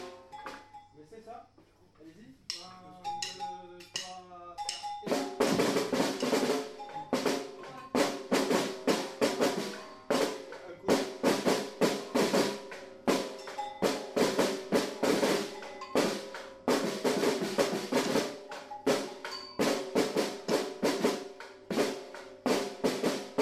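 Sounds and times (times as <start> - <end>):
afoxe snare drum: 5.1 - 23.4.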